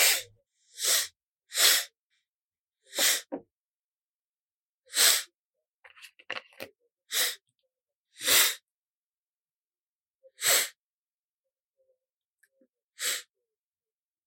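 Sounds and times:
man breathing through his nose into a microphone: 0.0s - 2.0s, 2.9s - 3.3s, 4.9s - 5.3s, 7.1s - 7.4s, 8.2s - 8.6s, 10.3s - 10.8s, 13.0s - 13.3s.

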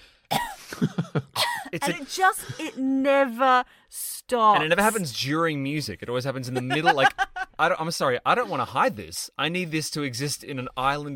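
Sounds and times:
voice imitating coughing of a ballet audience member: 0.3s - 2.8s
speech: 0.8s - 11.1s
laughter: 6.4s - 7.6s.

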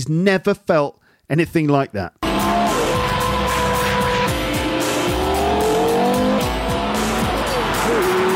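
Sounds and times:
speech: 0.0s - 2.2s
5.7 litre V10 engine revving hard through gear changes: 2.2s - 8.3s
tires squealing on track: 2.2s - 8.3s.

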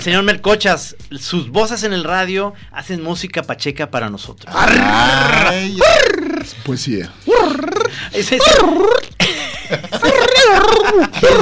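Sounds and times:
speech: 0.0s - 9.1s, 9.7s - 11.4s
voice imitating a whiny cartoonish child's cry with high-pitched wails: 4.5s - 6.6s, 7.3s - 9.2s, 10.0s - 11.4s
short bits of laughter: 9.2s - 11.4s.

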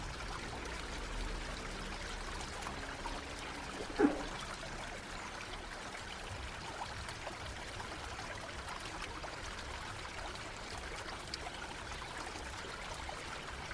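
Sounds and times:
river stream flowing: 0.0s - 13.7s
water splash: 3.5s - 4.7s.

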